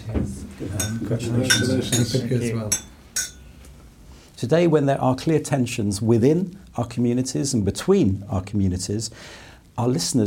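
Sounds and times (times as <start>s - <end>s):
speech: 0.1s - 2.9s, 4.4s - 10.2s
glasses clinking in a toast: 0.7s - 3.6s.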